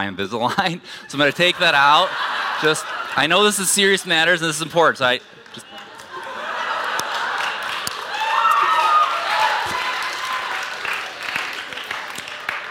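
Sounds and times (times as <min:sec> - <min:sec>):
speech: 0:00.0 - 0:05.7
laughter: 0:00.4 - 0:09.0
audience applause: 0:05.4 - 0:12.6.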